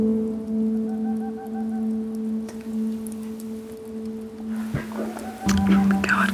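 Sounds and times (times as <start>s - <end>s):
rain-like hiss: 0.0s - 6.3s
boreal owl calling from a tree outside a house: 4.5s - 6.3s.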